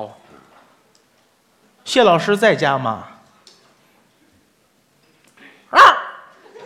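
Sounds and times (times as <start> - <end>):
speech: 1.9 - 3.1
person imitating a small dog bark: 5.7 - 6.3.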